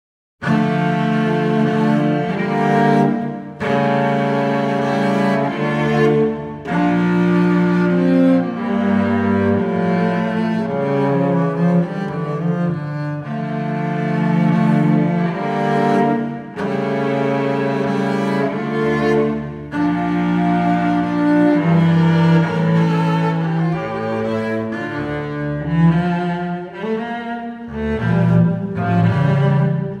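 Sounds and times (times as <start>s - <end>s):
cello piece in D minor: 0.4s - 29.9s.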